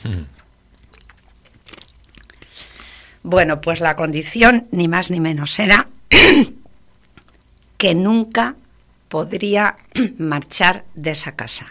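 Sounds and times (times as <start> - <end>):
speech: 0.0 - 0.4, 3.2 - 6.6, 7.8 - 11.6
person drinking water: 0.0 - 3.2, 7.0 - 7.7.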